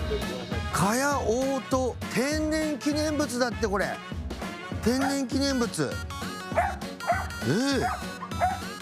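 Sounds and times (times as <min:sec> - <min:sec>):
speech: 0:00.1 - 0:04.1, 0:04.8 - 0:06.1, 0:07.4 - 0:08.1
several dogs barking and yipping: 0:05.0 - 0:05.3, 0:06.4 - 0:08.7
dog yowling: 0:06.5 - 0:08.7.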